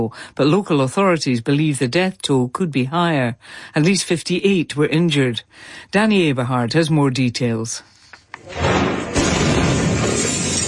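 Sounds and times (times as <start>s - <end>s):
speech: 0.0s - 9.0s
explosion: 8.4s - 10.6s
windows shattering: 8.4s - 10.6s.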